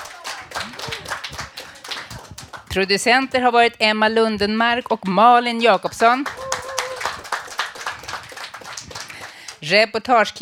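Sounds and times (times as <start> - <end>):
small group clapping hands: 0.0 - 3.1, 5.8 - 9.7
speech: 2.8 - 6.4, 9.7 - 10.4.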